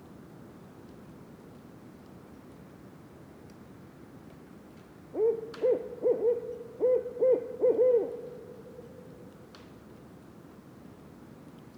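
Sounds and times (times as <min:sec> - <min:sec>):
barred owl hooting: 0:05.2 - 0:08.3.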